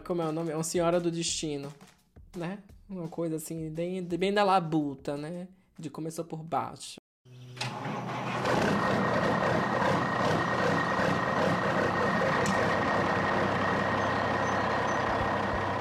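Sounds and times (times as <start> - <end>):
speech: 0.1 - 7.0
heavy truck engine roaring in a driving simulator game: 7.6 - 15.7.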